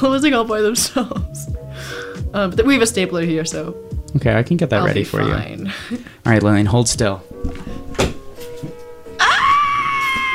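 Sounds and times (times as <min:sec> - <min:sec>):
speech: 0:00.0 - 0:08.1
soft thumps: 0:07.3 - 0:09.0
person fake screaming theatrically: 0:09.2 - 0:10.3.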